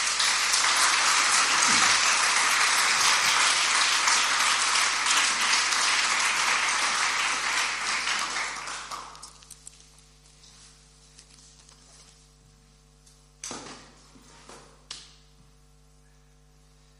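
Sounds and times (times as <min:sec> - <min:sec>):
sustained applause from a sizable audience: 0:00.0 - 0:09.4.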